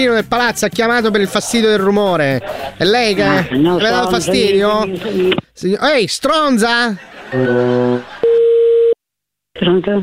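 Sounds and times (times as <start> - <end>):
speech: 0.0 - 8.1, 9.6 - 10.0
laughter: 1.2 - 5.3, 6.7 - 8.4
telephone busy tone after a caller hangs up: 8.2 - 9.0.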